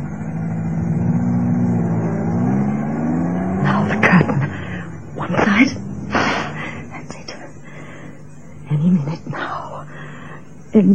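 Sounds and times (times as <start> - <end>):
car engine humming as it pulls away and accelerates: 0.0 - 8.6
speech: 10.8 - 10.9.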